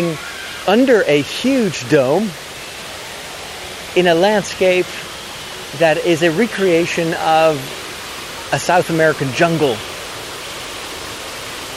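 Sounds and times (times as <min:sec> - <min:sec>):
speech: 0:00.0 - 0:02.4, 0:03.9 - 0:05.0, 0:05.7 - 0:07.8, 0:08.5 - 0:09.9
artificial waterfall in indoor jungle dome roaring into a small pond: 0:00.0 - 0:11.7.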